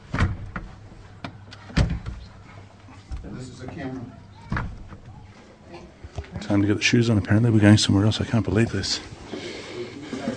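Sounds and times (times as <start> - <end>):
door shut with a solid thud: 1.6 - 2.3, 4.4 - 5.2
speech: 3.4 - 4.2, 5.7 - 9.2.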